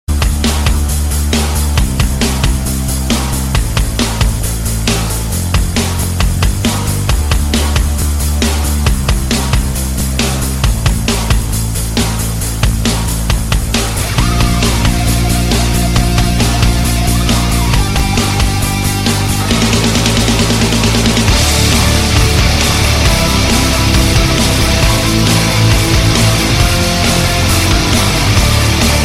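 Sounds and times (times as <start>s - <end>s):
heavy metal music: 0.1s - 29.0s.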